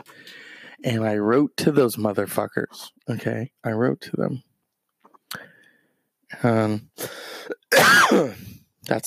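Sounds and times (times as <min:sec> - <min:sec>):
speech: 0:00.8 - 0:04.5, 0:06.3 - 0:09.0
harsh coughs: 0:07.5 - 0:08.5.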